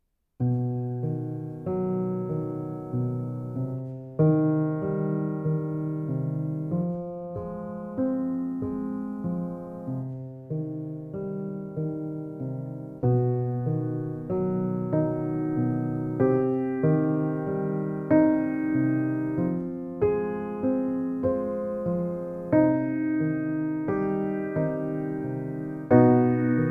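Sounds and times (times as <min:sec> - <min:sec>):
piano prelude: 0:00.4 - 0:26.7.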